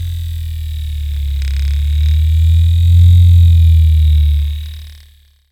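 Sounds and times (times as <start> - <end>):
industrial servo motor spinning weakly: 1.1 - 4.7.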